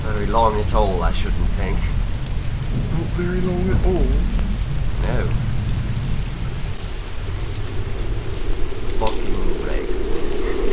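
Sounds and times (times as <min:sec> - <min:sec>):
heavy rain: 0:00.0 - 0:10.7
speech: 0:00.2 - 0:02.0, 0:02.7 - 0:04.4, 0:05.0 - 0:05.5.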